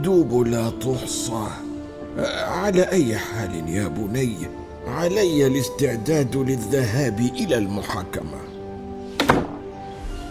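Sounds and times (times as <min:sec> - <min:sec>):
speech: 0:00.0 - 0:08.5
quick pair of knocks: 0:09.2 - 0:09.6
door shutting quickly with a solid thunk: 0:09.2 - 0:09.7.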